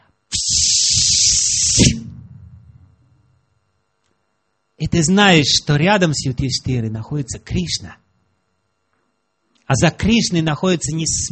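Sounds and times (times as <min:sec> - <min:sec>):
low noise: 0:00.0 - 0:11.3
voice imitating a hissing snake: 0:00.3 - 0:02.0
speech: 0:01.8 - 0:02.0, 0:04.9 - 0:08.1, 0:09.7 - 0:11.3.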